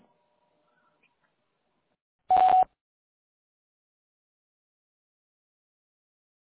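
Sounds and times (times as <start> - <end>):
voicemail recording short electronic beep: 2.3 - 2.7.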